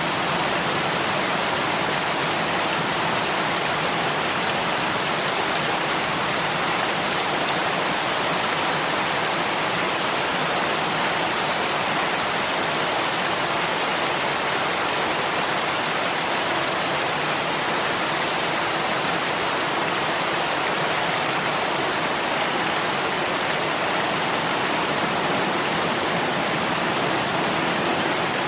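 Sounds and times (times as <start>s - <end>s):
light rain on a roof and windows: 0.0s - 28.4s.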